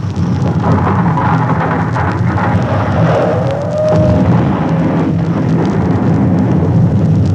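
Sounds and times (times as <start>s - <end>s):
deep explosion throwing rock and dirt into the air: 0.0s - 7.3s
rising whistle of city debris whizzing by: 0.7s - 6.1s.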